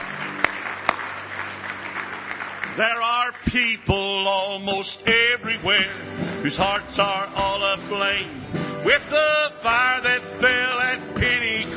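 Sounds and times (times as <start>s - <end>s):
congregation clapping hands in praise at a worship service: 0.0s - 4.6s
speech: 2.8s - 11.7s.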